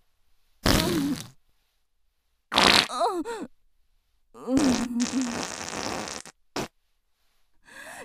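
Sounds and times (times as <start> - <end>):
woman farting: 0.6 - 1.4, 2.5 - 3.1, 4.4 - 6.7.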